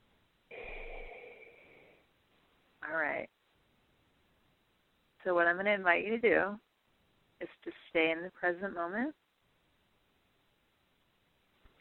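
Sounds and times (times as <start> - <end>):
deep breath in during a guided breathing exercise: 0.5 - 2.1
speech: 2.9 - 3.4, 5.2 - 6.7, 7.4 - 9.2.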